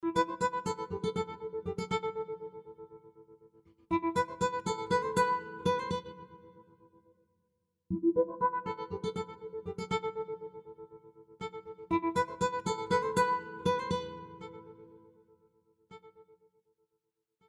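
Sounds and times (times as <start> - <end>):
acoustic guitar melodic pulses and phrases: 0.0 - 3.2, 3.9 - 6.6, 7.9 - 15.2.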